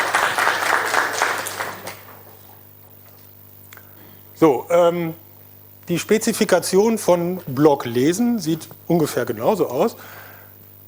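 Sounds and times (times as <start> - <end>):
audience clapping: 0.0 - 2.6
speech: 4.4 - 5.2, 5.9 - 10.2.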